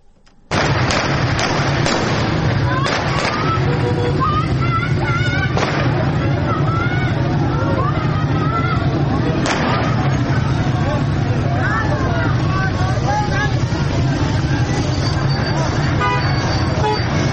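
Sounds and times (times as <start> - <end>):
sharp gunshots: 0.5 - 3.8, 5.5 - 6.3, 9.4 - 10.4
crowd of protesters shouting and yelling in Fanuj county Iran: 1.6 - 17.3.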